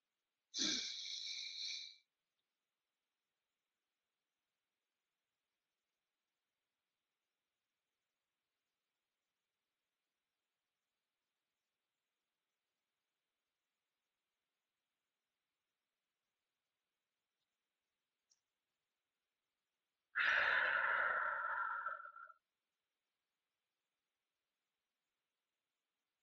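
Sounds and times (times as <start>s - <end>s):
long breathy exhale in a guided breathing exercise: 0.6s - 2.0s, 20.2s - 22.4s
deep inhale through the mouth in a guided breathing exercise: 20.2s - 22.3s.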